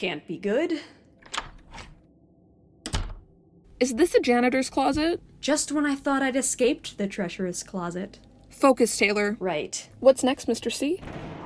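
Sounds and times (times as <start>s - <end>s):
speech: 0.0s - 1.0s, 3.8s - 11.4s
door thudding shut with wooden clunks: 2.9s - 3.3s.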